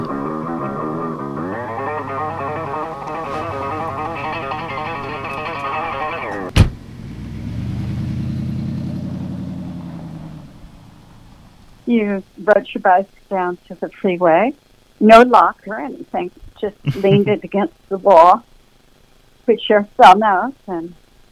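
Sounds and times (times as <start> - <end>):
car engine idling: 0.0 - 11.8
car slowing and stopping on a gravel road: 3.0 - 11.8
sharp clunk: 6.5 - 6.8
speech: 11.9 - 18.5, 19.5 - 21.0
laughter: 16.8 - 17.5.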